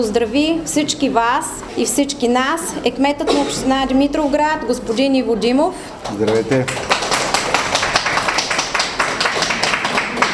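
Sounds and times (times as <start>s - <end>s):
speech: 0.0s - 7.0s
audience applause at an art exhibition: 6.1s - 10.3s.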